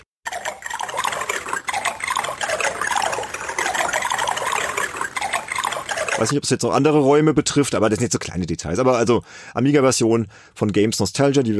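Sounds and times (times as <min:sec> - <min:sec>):
small bubbling and gurgling water game sound effect: 0:00.3 - 0:06.3
speech: 0:06.2 - 0:11.5.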